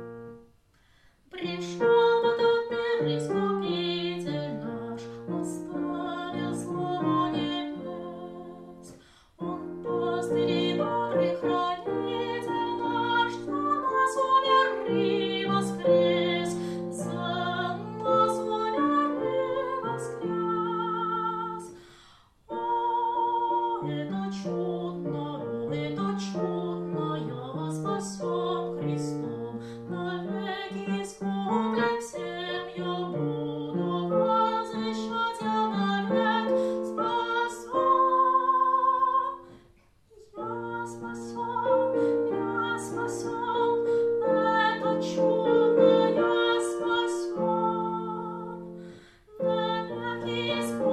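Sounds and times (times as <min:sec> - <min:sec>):
tenor singing: 0:01.3 - 0:21.8, 0:22.5 - 0:39.5, 0:40.1 - 0:50.9.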